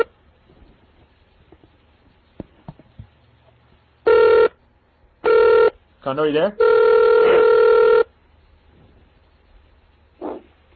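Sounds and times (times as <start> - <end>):
telephone ringing on a phone line dialed by computer terminal software: 4.1 - 4.5, 5.2 - 5.8, 6.6 - 8.1
speech: 6.0 - 6.8.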